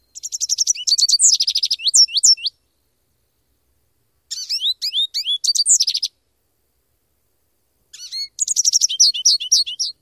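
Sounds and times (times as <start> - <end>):
brief bird songs in summer territory: 0.0 - 6.3, 7.9 - 9.9.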